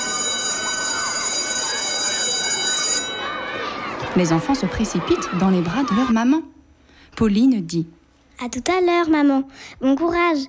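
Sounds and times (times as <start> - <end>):
school bell ringing: 0.0 - 4.4
faint murmur: 0.0 - 10.3
laughter: 1.8 - 6.2
speech: 4.2 - 6.6, 7.2 - 10.4.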